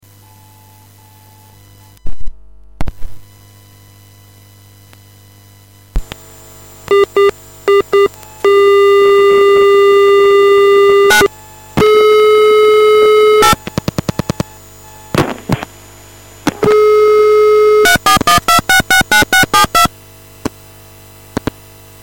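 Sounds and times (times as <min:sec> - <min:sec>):
acid synth DTMF dial tones: 0:00.0 - 0:02.3, 0:05.9 - 0:20.0.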